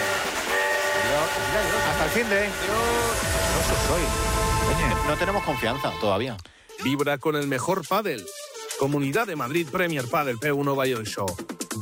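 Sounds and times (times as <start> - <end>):
steam train whistle: 0.0 - 5.8
speech: 1.5 - 11.8.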